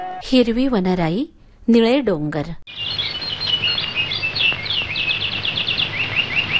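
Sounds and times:
speech: 0:00.2 - 0:02.8
birds chirping: 0:02.7 - 0:06.5.

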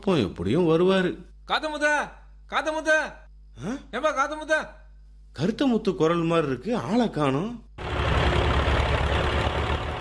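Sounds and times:
speech: 0:00.0 - 0:07.7
tractor engine idling: 0:07.8 - 0:09.9.

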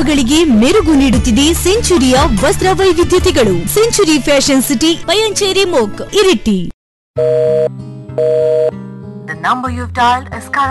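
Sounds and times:
speech: 0:00.0 - 0:08.3, 0:09.4 - 0:10.6
phone busy tone while placing a call: 0:07.2 - 0:08.7.

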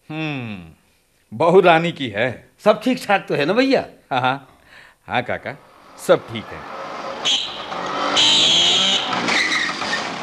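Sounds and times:
speech: 0:00.1 - 0:07.4
scooter engine whining: 0:05.6 - 0:10.2.

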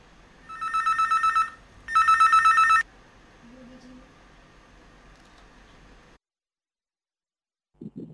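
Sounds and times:
telephone ringing with incoming-call warbling trill: 0:00.5 - 0:02.8.

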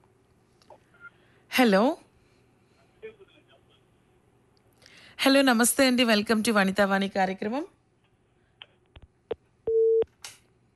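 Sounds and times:
speech: 0:01.6 - 0:02.0, 0:05.2 - 0:07.8
phone line beep after a dropped call: 0:09.7 - 0:10.0.

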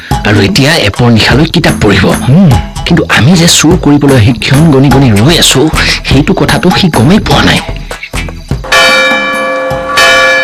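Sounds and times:
speech: 0:00.2 - 0:07.8
clock bell striking two o'clock: 0:08.6 - 0:10.4.

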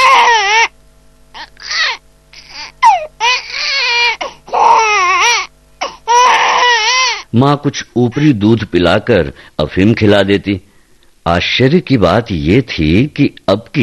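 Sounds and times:
hungry baby girl crying in high-pitched wails: 0:00.0 - 0:00.7, 0:01.4 - 0:07.3
speech: 0:07.4 - 0:13.8.

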